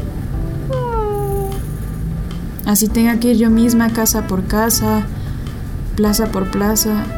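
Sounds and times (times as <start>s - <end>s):
steady low rumble: 0.0s - 7.1s
old female cat meowing: 0.7s - 1.7s
speech: 2.7s - 5.2s, 6.0s - 7.1s.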